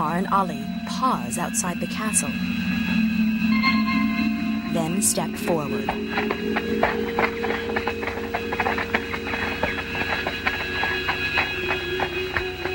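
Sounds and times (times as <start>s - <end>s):
faint steady hum: 0.0s - 12.7s
speech: 0.1s - 3.0s, 4.7s - 7.3s
horses' hooves clip-clopping over a hard surface: 4.7s - 12.7s.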